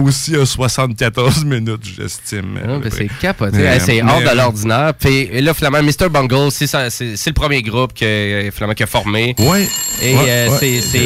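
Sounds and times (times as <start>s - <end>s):
speech: 0.0s - 11.0s
telephone ringing with shrill electronic tone: 9.4s - 11.0s.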